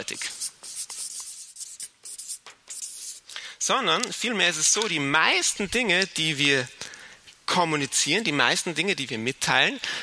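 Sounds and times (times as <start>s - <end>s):
speech: 0.0s - 0.4s, 3.7s - 6.8s, 7.5s - 10.0s
pen scratching while writing something down: 0.0s - 3.2s.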